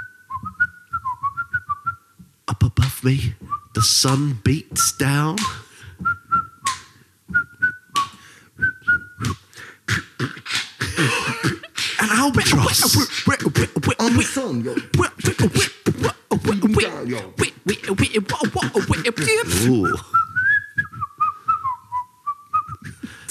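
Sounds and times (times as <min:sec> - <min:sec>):
person whistling a jaunty bouncy tune: 0:00.0 - 0:02.2, 0:03.4 - 0:09.6, 0:18.8 - 0:23.2
speech: 0:03.0 - 0:05.6, 0:12.4 - 0:13.4, 0:14.0 - 0:15.8, 0:16.8 - 0:20.1
laughter: 0:10.8 - 0:15.7, 0:16.4 - 0:20.0.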